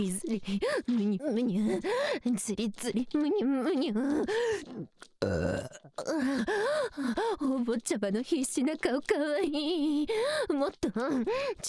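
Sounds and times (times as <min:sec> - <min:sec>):
speech: 0:00.0 - 0:11.6
wavering groan-like vocal sounds: 0:04.6 - 0:06.3
loud drawn-out burps: 0:05.2 - 0:06.1.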